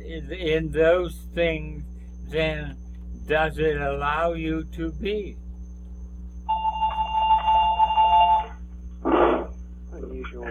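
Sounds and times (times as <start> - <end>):
speech: 0.1 - 5.4
telephone ringing with electronic trill: 6.5 - 8.6.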